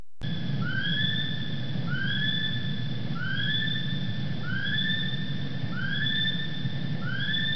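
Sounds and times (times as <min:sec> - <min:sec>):
steady low rumbling background noise: 0:00.2 - 0:07.5
kiwi calling with shrill upslurred whistles: 0:00.6 - 0:07.5.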